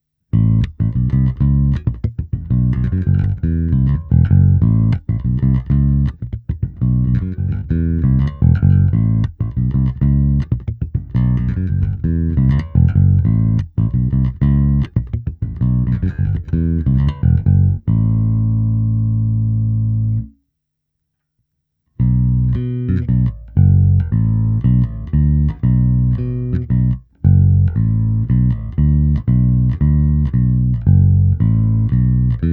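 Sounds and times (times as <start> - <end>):
bass guitar through a multi-effects amp simulation: 0.3 - 20.4, 22.0 - 32.5.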